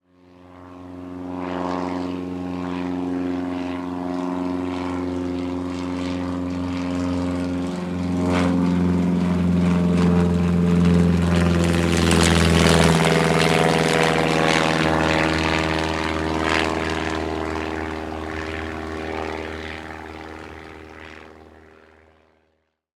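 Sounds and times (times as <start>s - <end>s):
biplane flying by: 0.1s - 22.6s.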